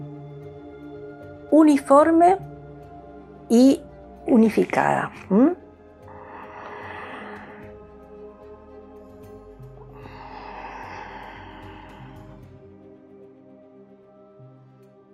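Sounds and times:
soft steady tonal background: 0.0s - 15.1s
speech: 1.5s - 2.5s, 3.5s - 5.6s
long deep breaths: 6.0s - 8.4s, 9.3s - 12.8s.

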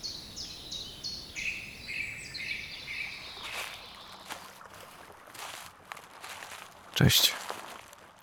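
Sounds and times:
bird chirps: 0.0s - 4.4s
footsteps rustling through dry fallen leaves: 3.2s - 8.2s
speech: 7.0s - 7.4s.

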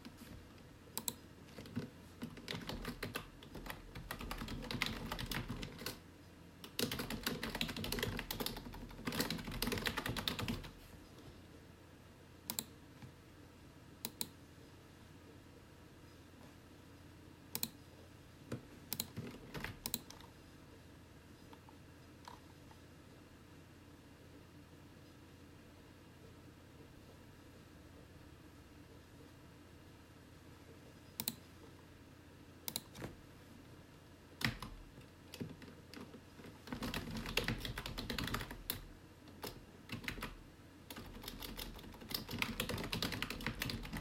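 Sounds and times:
low steady whirr of a computer: 0.0s - 44.0s
gentle typing on a computer keyboard in a small office: 1.0s - 6.0s, 6.6s - 10.8s, 18.9s - 20.3s, 32.7s - 33.1s, 34.4s - 44.0s.

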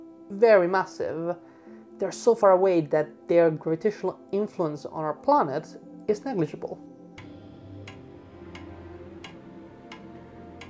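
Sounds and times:
speech: 0.3s - 6.9s
clock ticking: 7.2s - 10.6s.

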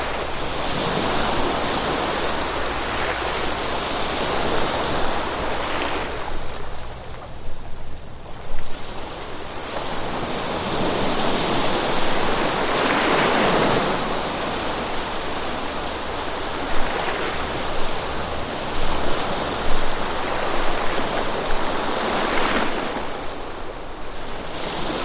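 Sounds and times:
low wind rumble: 0.0s - 25.0s
moderate ocean waves breaking: 0.0s - 25.0s.

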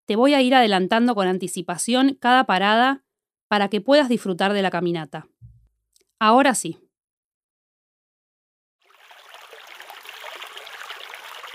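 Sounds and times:
speech: 0.1s - 5.3s, 6.2s - 6.8s
flowing stream water rushing: 8.9s - 11.5s.

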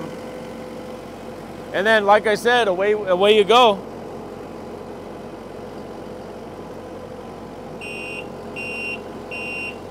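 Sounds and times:
asphalt paver engine drone: 0.0s - 9.8s
speech: 1.7s - 3.9s
asphalt paver backup alarm beeps: 7.8s - 9.8s.

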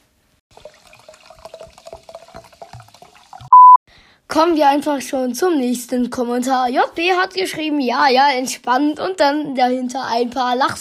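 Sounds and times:
water splashing and gurgling: 0.5s - 3.5s
short loud electronic beep: 3.5s - 3.8s
speech: 4.3s - 10.7s.

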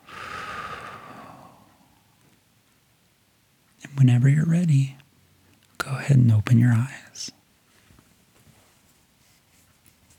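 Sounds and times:
deep breath in through the nose and out through the mouth: 0.0s - 2.1s
speech: 3.9s - 5.0s, 6.0s - 7.4s.

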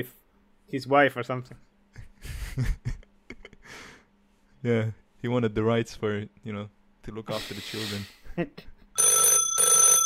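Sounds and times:
speech: 0.0s - 2.9s, 4.6s - 8.7s
telephone ringing with a bright buzzing bell tone: 9.0s - 10.0s.

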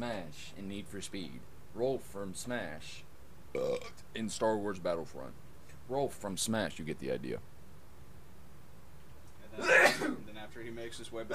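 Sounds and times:
speech: 0.0s - 7.5s, 9.6s - 11.3s
sneeze: 9.6s - 10.2s.

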